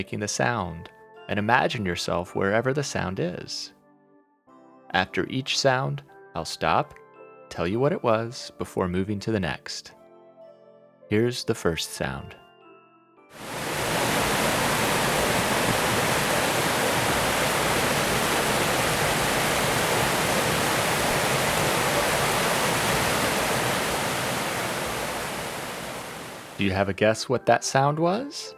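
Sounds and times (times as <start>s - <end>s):
speech: 0.0s - 3.8s, 4.9s - 10.0s, 11.1s - 12.4s, 26.6s - 28.5s
waterfall roaring: 13.4s - 26.8s.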